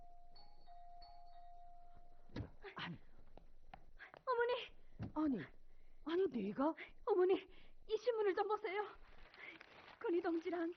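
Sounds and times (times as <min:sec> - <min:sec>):
electronic doorbell ringing: 0:00.0 - 0:02.2
speech: 0:05.2 - 0:09.0, 0:10.0 - 0:10.7.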